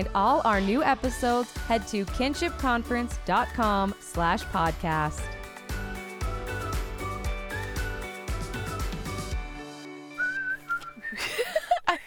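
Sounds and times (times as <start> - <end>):
speech: 0.0 - 5.4
instrumental music: 1.1 - 11.2
thin whistled notes from someone with a dry mouth: 10.2 - 11.2
laughter: 11.0 - 12.0.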